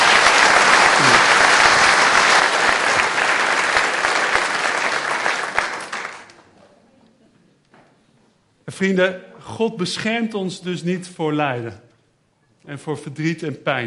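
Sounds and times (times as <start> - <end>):
audience applause: 0.0 - 6.5
speech: 8.7 - 11.9, 12.7 - 13.8.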